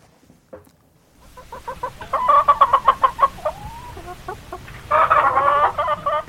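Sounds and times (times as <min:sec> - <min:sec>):
hen clucking: 0:01.2 - 0:06.2.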